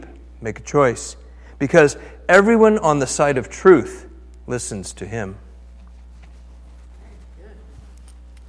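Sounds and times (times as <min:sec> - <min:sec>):
low room hum: 0:00.0 - 0:08.4
speech: 0:00.4 - 0:05.4
audience finger clicks: 0:07.9 - 0:08.4.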